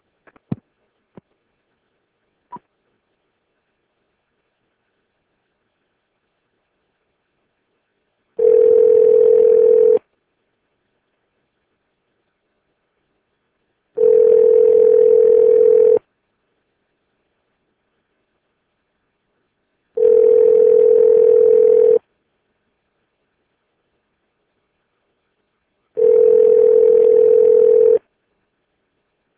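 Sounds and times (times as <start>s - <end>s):
telephone ringing tone: 8.4s - 10.0s, 14.0s - 16.0s, 20.0s - 22.0s, 26.0s - 28.0s.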